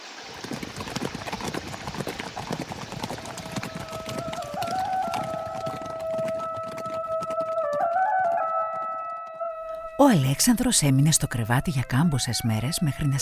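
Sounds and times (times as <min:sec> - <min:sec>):
horse hooves clip-clopping as riders head home: 0:00.2 - 0:08.6
speech: 0:10.0 - 0:13.1.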